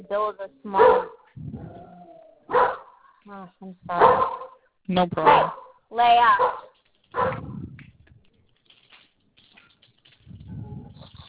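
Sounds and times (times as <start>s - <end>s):
speech: 0.0s - 1.8s, 3.2s - 6.6s
dog barking: 0.7s - 1.3s, 2.5s - 3.1s, 3.9s - 4.6s, 5.2s - 7.6s.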